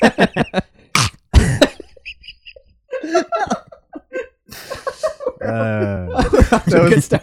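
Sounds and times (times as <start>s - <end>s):
person imitating a dog: 1.0s - 1.2s
laughter: 1.4s - 7.2s.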